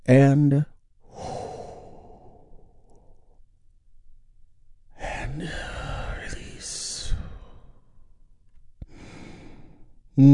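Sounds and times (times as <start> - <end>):
speech: 0.1 - 0.7, 10.2 - 10.3
long slow airy inhale during a guided relaxation exercise: 1.0 - 3.1, 8.9 - 9.8.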